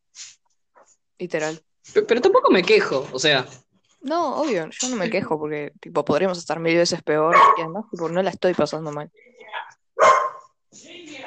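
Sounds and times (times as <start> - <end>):
speech: 1.2 - 10.1
female dog barking: 7.3 - 7.7, 10.0 - 10.5
female dog yelping: 7.3 - 7.7, 10.0 - 10.4.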